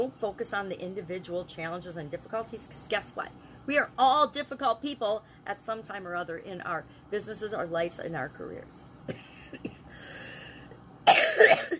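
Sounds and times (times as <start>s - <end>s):
speech: 0.0s - 9.2s
person with a cold coughing: 9.1s - 9.9s, 11.0s - 11.7s.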